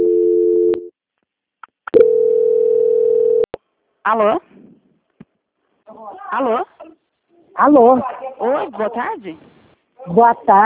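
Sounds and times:
telephone tone during a call transfer: 0.0 - 0.9, 1.9 - 3.5
speech: 4.0 - 4.5, 5.9 - 6.7, 7.6 - 10.6.

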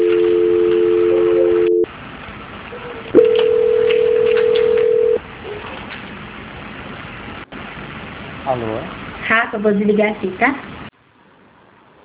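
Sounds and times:
telephone line tones during a call transfer: 0.0 - 1.9, 3.2 - 5.2
speech: 9.5 - 10.7.

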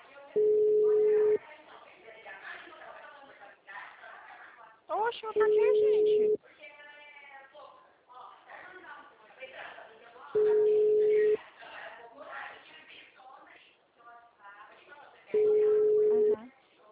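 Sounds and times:
telephone ringback tone while calling an agency: 0.4 - 1.4, 5.4 - 6.4, 10.4 - 11.4, 15.4 - 16.4
speech: 5.1 - 6.4.

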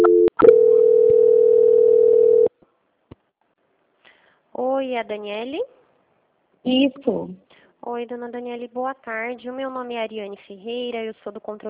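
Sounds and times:
telephone call-transfer beep and steady tone: 0.0 - 2.5
speech: 4.6 - 5.8, 6.6 - 11.6.

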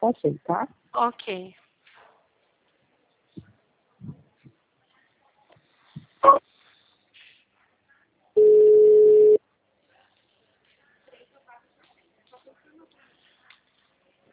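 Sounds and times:
speech: 0.0 - 1.6, 6.2 - 6.5
telephone ringing tone while a call is transferred: 8.4 - 9.4.

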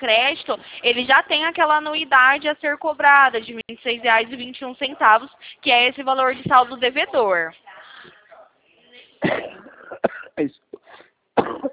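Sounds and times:
speech: 0.0 - 8.2, 9.2 - 10.6
faint murmuring: 3.5 - 11.0
person coughing sharply: 9.2 - 11.7.

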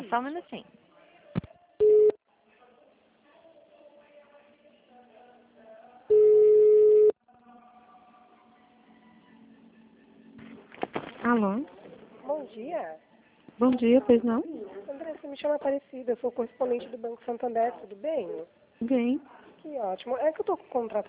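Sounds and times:
speech: 0.1 - 0.8, 11.3 - 13.0, 13.6 - 21.0
telephone beeps while a phone call is being transferred: 1.8 - 2.2, 6.1 - 7.2.

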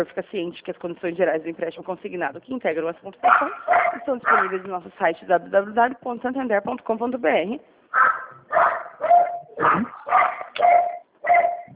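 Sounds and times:
speech: 0.0 - 8.1
dog barking: 3.2 - 4.6, 7.9 - 11.7.

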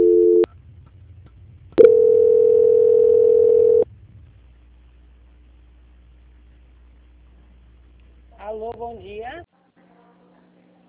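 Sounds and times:
telephone line tones during a call transfer: 0.0 - 0.5, 1.8 - 3.8.

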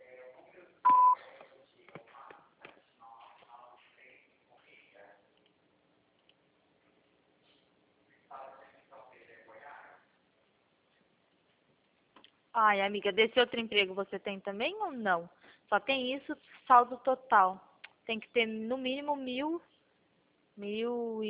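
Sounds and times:
voicemail beep tone: 0.9 - 1.2
speech: 12.6 - 19.7, 20.6 - 21.2.

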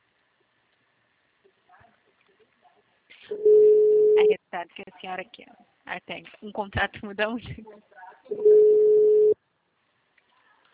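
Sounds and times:
telephone call ringing tone: 3.4 - 4.3, 8.3 - 9.4
speech: 4.6 - 8.8.

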